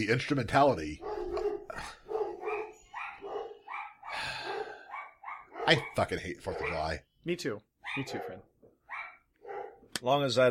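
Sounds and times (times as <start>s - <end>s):
speech: 0.0s - 1.1s, 5.7s - 8.5s, 10.0s - 10.5s
dog barking and yelping: 1.0s - 7.0s, 7.8s - 9.9s.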